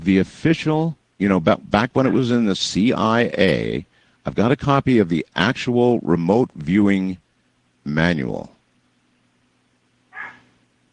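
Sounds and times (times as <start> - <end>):
speech: 0.0 - 7.2, 7.9 - 8.6
faint steady low hum: 0.0 - 10.9
dog barking at a raccoon at the door: 10.1 - 10.5.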